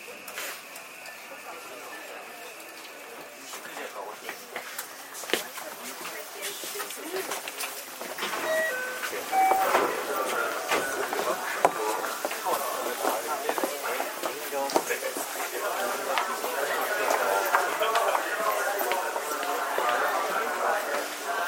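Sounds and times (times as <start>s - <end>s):
voices: 8.2s - 21.4s
JR 323 series electric train running in Japan: 8.3s - 16.6s.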